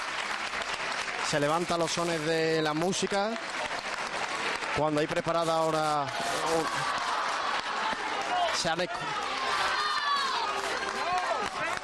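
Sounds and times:
scattered clapping: 0.0s - 11.8s
speech: 1.3s - 3.5s, 4.8s - 7.0s, 8.6s - 9.2s
dense crowd cheering and shouting outdoors at a procession: 1.3s - 11.8s.

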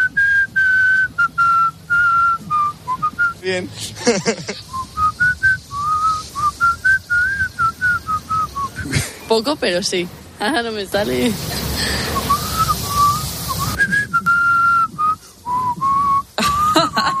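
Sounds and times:
person whistling a simple tune: 0.0s - 3.4s, 4.6s - 8.9s, 12.0s - 17.1s
faint noise: 0.0s - 17.1s
speech: 3.4s - 4.8s, 9.3s - 11.8s
laughter: 3.8s - 4.8s, 8.7s - 9.3s, 16.4s - 17.1s.

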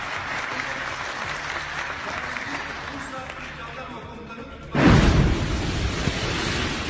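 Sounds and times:
bomb explosion near a parliament: 4.8s - 6.8s
steady noisy rumble: 4.8s - 6.8s.

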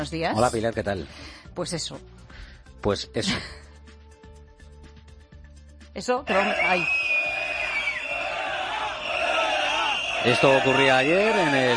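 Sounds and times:
speech: 0.0s - 3.6s, 6.0s - 7.0s, 10.2s - 11.7s
protest crowd shouting at a union-called rally on a street in Madrid: 6.3s - 11.7s.

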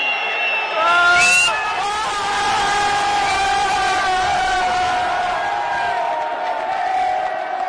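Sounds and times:
crowd shouting: 0.0s - 7.6s.

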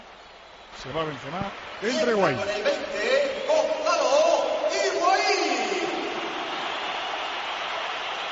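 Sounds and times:
shrill whistles from stadium crowd: 0.0s - 8.3s
stadium crowd clapping: 0.8s - 3.5s, 5.7s - 8.3s
speech: 0.8s - 4.1s
large football stadium crowd roaring: 1.7s - 8.3s.

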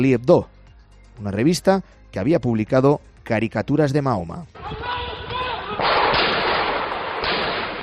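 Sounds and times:
speech: 0.0s - 0.5s, 1.2s - 4.9s
loud assault rifle gunshots: 5.8s - 7.8s.

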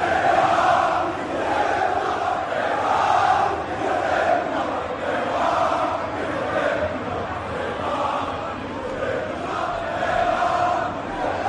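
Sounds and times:
huge stadium crowd booing and jeering: 0.0s - 11.4s.

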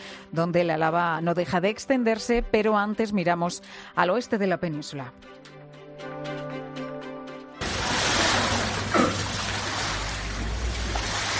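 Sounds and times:
speech: 0.3s - 5.5s
brushes sweeping flood water in a supermarket: 7.6s - 11.3s.

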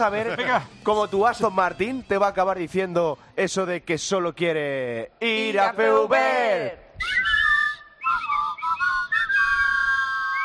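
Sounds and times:
speech: 0.0s - 7.2s
person whistling a lively wavering melody: 7.0s - 10.4s.

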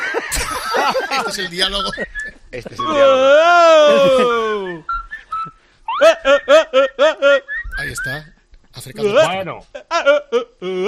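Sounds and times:
laughter: 0.0s - 7.6s
speech: 0.9s - 5.0s, 6.0s - 10.8s
person whistling: 4.9s - 5.6s.

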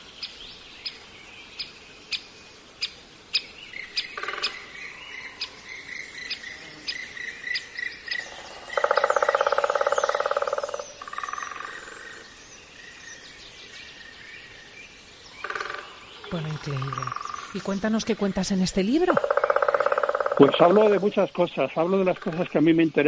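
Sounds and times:
bird calls in a beech forest: 0.0s - 23.0s
insects humming in a beech forest: 0.0s - 23.0s
woodpeckers knocking in a beech forest: 4.0s - 4.7s, 8.1s - 12.2s, 15.4s - 22.7s
speech: 16.4s - 19.3s, 20.4s - 23.0s.

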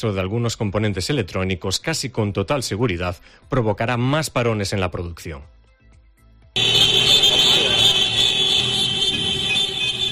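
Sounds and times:
speech: 0.0s - 5.6s
horns of dozens of food-delivery riders' motorbikes at a street protest: 6.6s - 10.1s
rumbling street background: 6.6s - 10.1s.

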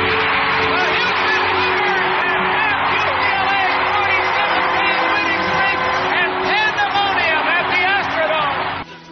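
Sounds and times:
huge stadium crowd roaring, shouting and whooping: 0.0s - 8.9s.

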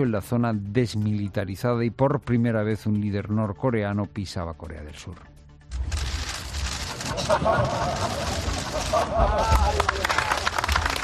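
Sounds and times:
speech: 0.0s - 5.3s, 7.1s - 10.1s
camera flashes and shutters clicking in rapid bursts: 5.7s - 9.2s
laughter: 6.9s - 11.0s.

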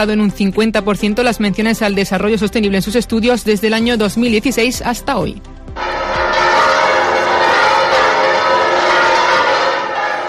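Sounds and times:
speech: 0.0s - 6.2s
cathedral bells pealing in Córdoba, Spain: 5.8s - 10.2s.

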